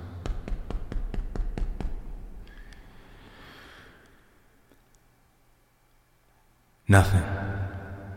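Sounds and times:
knocking on a door: 0:00.2 - 0:02.2
speech: 0:06.9 - 0:07.4.

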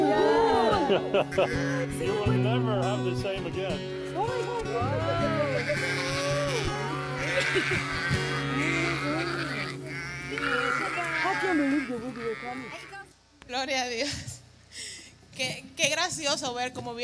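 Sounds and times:
laughter: 0:00.0 - 0:02.2, 0:04.9 - 0:09.5, 0:10.3 - 0:12.8
speech: 0:00.9 - 0:06.2, 0:07.4 - 0:08.3, 0:10.4 - 0:17.0
flock of sheep bleating: 0:01.2 - 0:02.5, 0:04.8 - 0:13.1.

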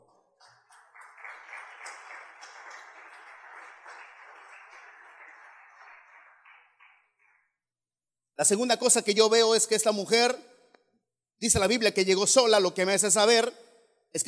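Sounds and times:
audience at a sermon applauding: 0:00.0 - 0:07.4
speech: 0:08.4 - 0:10.5, 0:11.4 - 0:14.2.

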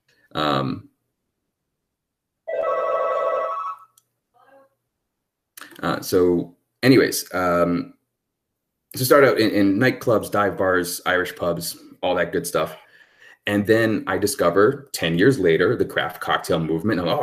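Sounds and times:
speech: 0:00.4 - 0:00.9, 0:05.9 - 0:08.0, 0:08.9 - 0:12.8, 0:13.4 - 0:17.2
single electronic office phone ringing: 0:02.5 - 0:03.9.

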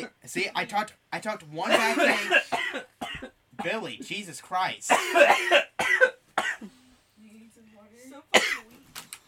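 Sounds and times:
speech: 0:00.0 - 0:03.0, 0:03.6 - 0:05.9
man coughing hard: 0:01.6 - 0:03.8, 0:04.9 - 0:06.7, 0:08.3 - 0:08.6.

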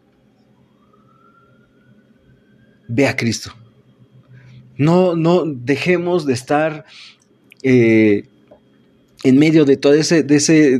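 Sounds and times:
ambulance siren wailing: 0:00.0 - 0:08.2
speech: 0:02.9 - 0:03.6, 0:04.8 - 0:08.3, 0:09.2 - 0:10.7.

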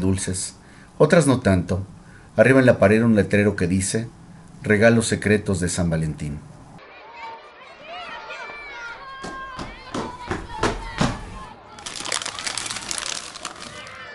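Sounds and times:
speech: 0:00.0 - 0:06.5
children calling out and laughing: 0:06.8 - 0:14.1.

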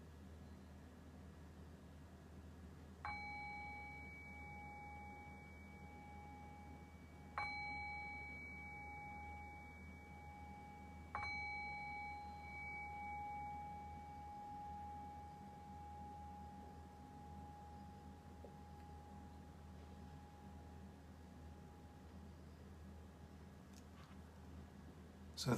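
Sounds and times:
low hum: 0:00.0 - 0:25.5
bell struck as a cue to return from guided meditation: 0:03.1 - 0:20.8
speech: 0:25.4 - 0:25.5.

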